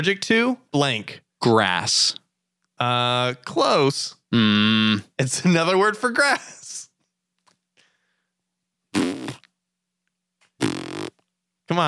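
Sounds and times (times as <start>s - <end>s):
speech: 0.0s - 2.2s, 2.8s - 6.6s, 11.7s - 11.8s
loud buzzy fart noises: 4.3s - 5.1s, 8.9s - 9.5s, 10.6s - 11.3s.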